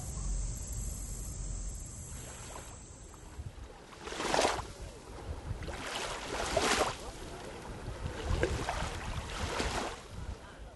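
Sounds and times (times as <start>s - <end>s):
wind: 0.0s - 10.7s
gentle lake waves lapping ashore: 2.1s - 10.4s.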